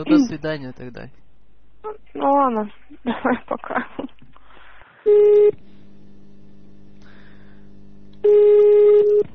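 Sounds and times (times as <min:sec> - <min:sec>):
speech: 0:00.0 - 0:01.2, 0:01.8 - 0:04.3, 0:05.0 - 0:05.7, 0:08.2 - 0:09.3
electronic telephone beeps of an incoming call: 0:05.1 - 0:05.6, 0:08.2 - 0:09.3
quieter continuous telephone tone: 0:05.1 - 0:05.6, 0:06.3 - 0:09.3.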